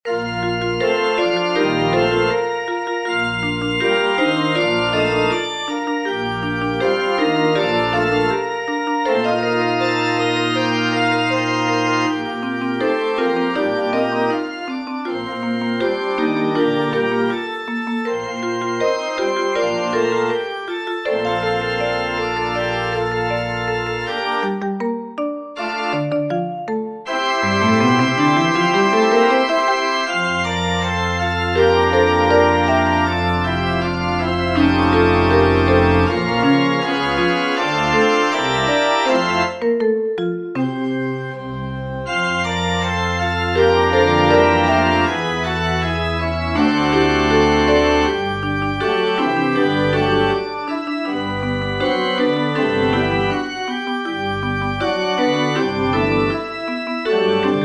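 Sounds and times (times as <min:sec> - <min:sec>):
pipe organ playing an interlude: 0:00.1 - 0:24.8, 0:25.6 - 0:39.8, 0:40.5 - 0:57.6
marimba: 0:24.5 - 0:27.1, 0:39.5 - 0:40.7
vibraphone: 0:24.5 - 0:27.6, 0:39.5 - 0:41.0.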